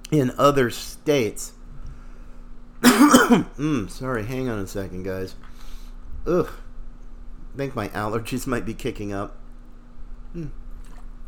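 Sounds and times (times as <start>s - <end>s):
speech: 0.1s - 1.6s, 2.9s - 5.5s, 6.2s - 6.6s, 7.6s - 9.4s, 10.3s - 10.6s
person sipping water: 10.7s - 11.1s.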